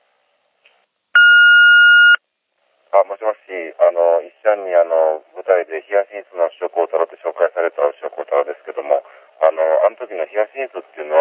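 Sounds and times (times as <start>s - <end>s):
answering machine beep: 1.2s - 2.2s
speech: 3.0s - 11.2s.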